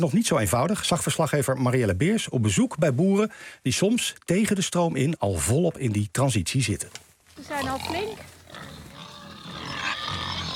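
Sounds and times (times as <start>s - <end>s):
speech: 0.0s - 8.3s
Bonte Bentheimer pigs grunting and squealing on a farm: 7.4s - 10.5s.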